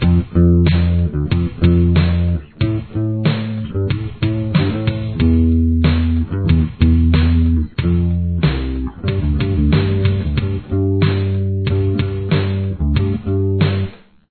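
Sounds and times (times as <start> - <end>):
bass verse: 0.0 - 14.1.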